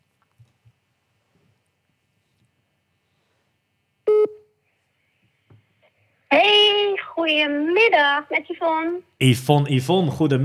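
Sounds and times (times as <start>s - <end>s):
short electronic telephone ringing tone while calling: 4.1s - 4.4s
speech: 7.2s - 10.4s.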